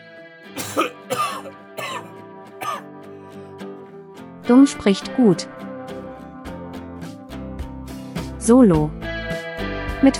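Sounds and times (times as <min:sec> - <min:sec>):
person clearing throat: 0:00.6 - 0:02.8
person coughing: 0:00.6 - 0:02.8
speech: 0:04.5 - 0:05.6, 0:08.5 - 0:09.0, 0:10.0 - 0:10.1.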